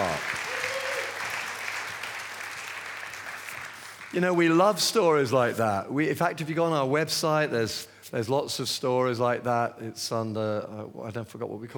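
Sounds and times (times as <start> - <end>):
large indoor crowd applauding: 0.0 - 4.2
speech: 4.1 - 11.7.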